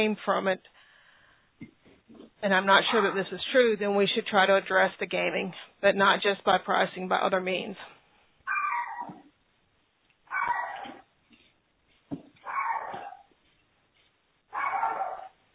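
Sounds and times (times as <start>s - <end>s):
speech: 0.0s - 0.8s, 1.6s - 8.0s
puppy barking in whiny yaps: 10.3s - 11.0s, 12.4s - 13.3s, 14.5s - 15.4s.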